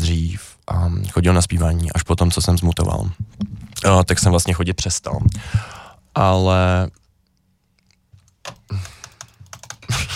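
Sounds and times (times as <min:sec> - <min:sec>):
speech: 0:00.3 - 0:07.0
computer keyboard keys clicking: 0:08.2 - 0:09.8.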